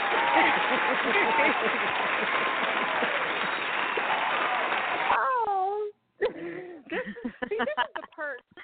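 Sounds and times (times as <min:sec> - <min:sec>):
laughter: 0:00.0 - 0:03.9, 0:06.2 - 0:08.4
loud dense applause: 0:00.0 - 0:05.2.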